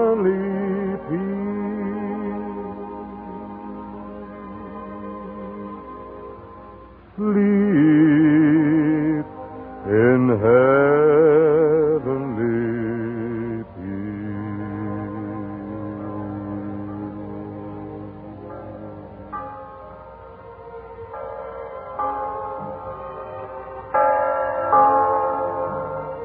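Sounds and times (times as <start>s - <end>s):
Christmas bells ringing: 0.0s - 26.2s.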